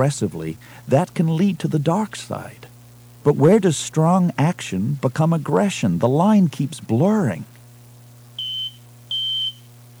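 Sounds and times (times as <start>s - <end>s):
speech: 0.0s - 7.5s
low electrical hum: 0.0s - 9.9s
spaceship cockpit console beeping: 8.4s - 9.9s.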